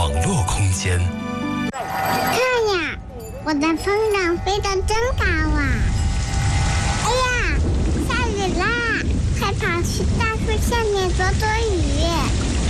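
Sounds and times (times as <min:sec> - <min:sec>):
speech: 0:00.8 - 0:02.2, 0:03.4 - 0:06.0, 0:09.6 - 0:12.4
excited children's voices: 0:02.3 - 0:05.9, 0:07.0 - 0:12.5
steady dense rain falling: 0:05.2 - 0:12.6.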